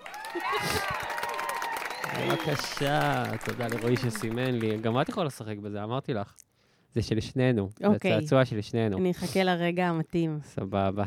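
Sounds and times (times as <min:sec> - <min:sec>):
crowd cheering and whooping: 0:00.0 - 0:05.1
steady clapping: 0:00.0 - 0:05.4
speech: 0:00.4 - 0:00.9, 0:02.1 - 0:11.0.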